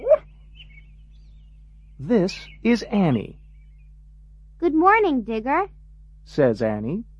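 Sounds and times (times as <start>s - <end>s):
dog giving a short sharp bark: 0.0s - 0.2s
faint steady hum: 0.0s - 7.1s
speech: 2.0s - 3.4s, 4.6s - 7.1s.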